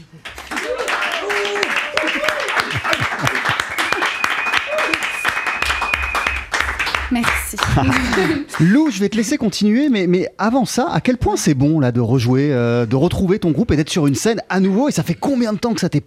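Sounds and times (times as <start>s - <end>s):
crowd applauding: 0.0s - 9.4s
laughter: 1.4s - 5.2s, 7.6s - 9.8s
people whistling: 3.5s - 6.7s
speech: 7.1s - 16.0s.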